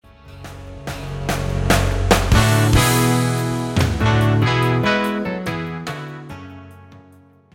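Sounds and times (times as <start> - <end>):
cymbals: 1.0 - 6.2.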